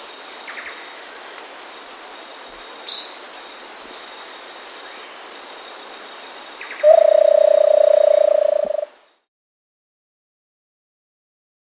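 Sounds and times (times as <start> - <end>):
continuous high insect whine: 0.0 - 9.2
dense forest hiss: 0.0 - 9.2
versicolored barbet giving a low purring trill in South America: 6.8 - 8.9.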